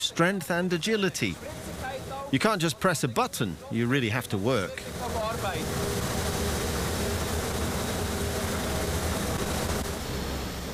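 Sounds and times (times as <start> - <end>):
speech: 0.0 - 1.7, 2.3 - 5.8
train rolling on the rails: 0.0 - 10.7.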